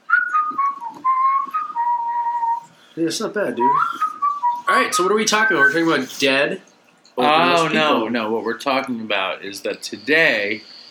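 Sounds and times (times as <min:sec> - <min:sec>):
person whistling a tune: 0:00.1 - 0:02.7, 0:03.6 - 0:04.7, 0:05.3 - 0:05.9
speech: 0:03.0 - 0:04.1, 0:04.7 - 0:10.7.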